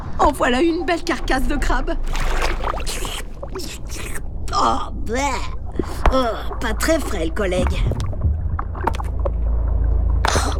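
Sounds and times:
speech: 0.2s - 4.0s, 4.6s - 8.0s
boat motor droning with a deep rumble: 5.9s - 10.5s.

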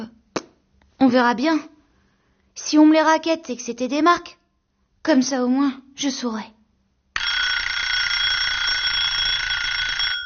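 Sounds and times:
speech: 1.1s - 1.8s, 2.6s - 4.4s, 5.0s - 6.6s
electronic alarm clock buzzing: 7.2s - 10.2s.

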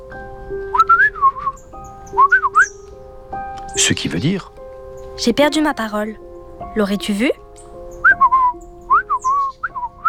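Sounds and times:
soft musical drone: 0.0s - 10.0s
person whistling to imitate a bird: 0.7s - 2.8s, 8.0s - 10.0s
speech: 3.8s - 4.6s, 5.2s - 7.4s.

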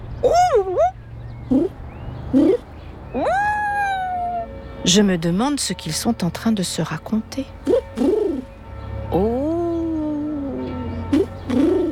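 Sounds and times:
pigeons cooing: 0.0s - 4.5s, 7.6s - 8.6s, 9.5s - 11.8s
speech: 4.9s - 7.6s, 9.1s - 9.4s.

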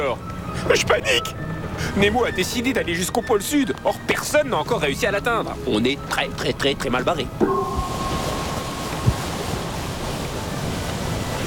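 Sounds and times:
water and wind washing around a submarine sailing on the surface among ice: 0.0s - 11.4s
speech: 0.2s - 7.8s
brief low thump: 7.4s - 9.4s.

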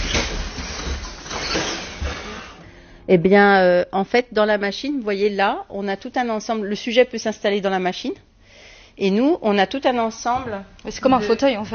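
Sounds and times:
heavy machine room door grinding open with mechanical rumble and rattling: 0.0s - 2.6s
speech: 3.1s - 8.3s, 9.0s - 11.7s.

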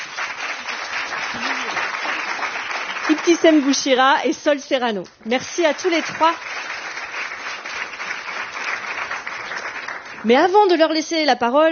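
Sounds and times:
audience applause: 0.0s - 4.2s, 5.6s - 10.6s
speech: 3.1s - 6.7s, 10.2s - 11.7s.

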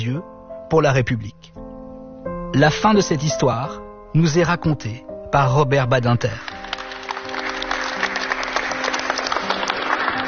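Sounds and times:
speech: 0.0s - 1.6s, 2.6s - 6.5s
applause from a large assembly in a parliamentary chamber: 6.3s - 10.2s.

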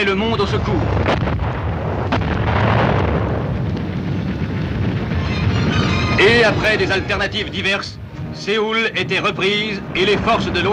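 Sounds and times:
speech: 0.0s - 1.6s, 6.2s - 10.7s
heavy rumble of booming detonations: 0.0s - 10.7s
loud explosions: 0.1s - 10.7s.

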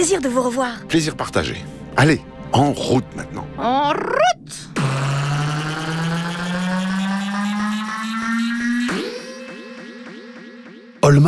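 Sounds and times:
speech: 0.0s - 4.7s, 11.1s - 11.2s
motorboat engine revving as it pulls away: 4.7s - 9.3s.

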